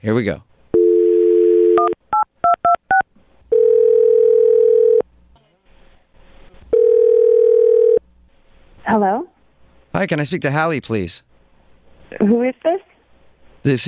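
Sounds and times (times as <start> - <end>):
speech: 0.0 - 0.5, 8.9 - 9.3, 10.0 - 11.3, 12.1 - 12.8, 13.6 - 13.8
telephone dial tone: 0.8 - 2.0, 3.5 - 5.0, 6.7 - 8.0
telephone line ringback tones: 0.8 - 2.0, 2.9 - 5.0, 6.7 - 8.0.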